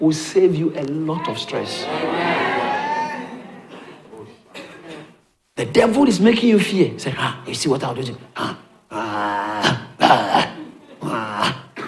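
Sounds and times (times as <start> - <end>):
speech: 0.0 - 2.5, 5.6 - 8.7
laughter: 1.2 - 5.1, 10.4 - 11.3
man's voice imitating a growling dog: 8.9 - 11.8.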